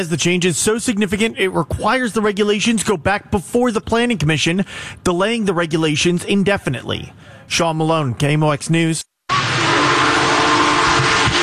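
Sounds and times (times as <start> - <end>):
speech: 0.0 - 9.1
world's largest operating steam locomotive passing crowds: 9.3 - 11.4.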